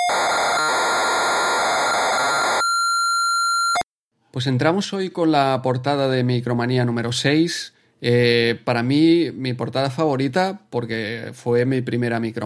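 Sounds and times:
computer tape loading harsh screeching data noise: 0.1 - 2.7
computer tape loading high pilot tone: 0.1 - 2.9
speech: 4.3 - 12.4.

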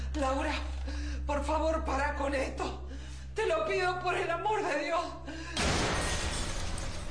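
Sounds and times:
speech: 0.2 - 5.6
window glass shattering: 5.6 - 7.0.

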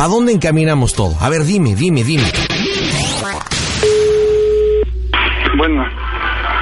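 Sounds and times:
speech: 0.0 - 3.5, 5.6 - 6.1
steady electronic tone of a dropped phone call: 3.8 - 5.8
noisy swishing phone line static: 3.8 - 6.5.

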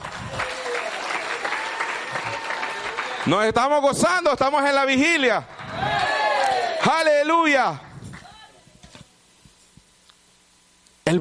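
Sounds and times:
audience applauding: 0.0 - 3.8, 5.4 - 8.4
speech: 3.3 - 5.5, 6.8 - 7.9.

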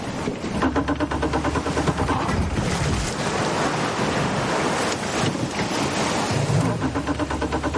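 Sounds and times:
gusts of wind buffeting the microphone: 0.0 - 7.7
motorboat engine droning on a river: 0.0 - 7.7
rushing water: 0.0 - 7.7.

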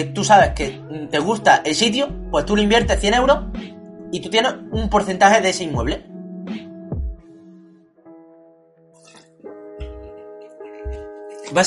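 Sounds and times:
speech: 0.0 - 6.6
person drinking water with wet gulps and swallows: 9.0 - 11.4.

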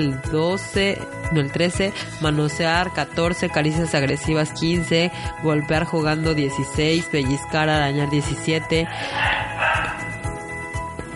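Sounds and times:
speech: 0.0 - 9.6
dog barking: 8.8 - 10.2.

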